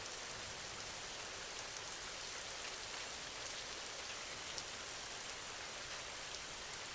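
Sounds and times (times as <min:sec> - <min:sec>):
steady rain falling: 0:00.0 - 0:06.9.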